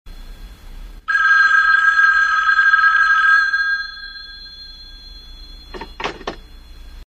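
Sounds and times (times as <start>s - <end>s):
old telephone ringing: 1.1s - 6.8s
old telephone being picked up: 5.6s - 6.5s.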